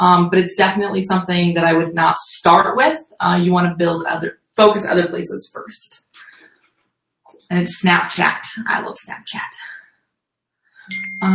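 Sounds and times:
speech: 0:00.0 - 0:06.0, 0:07.5 - 0:09.8, 0:10.9 - 0:11.3
electronic smartphone app notification chime: 0:10.9 - 0:11.3.

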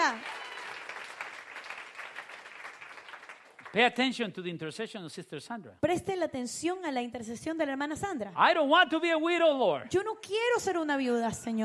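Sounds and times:
congregation clapping: 0:00.0 - 0:04.3
speech: 0:03.7 - 0:11.6.

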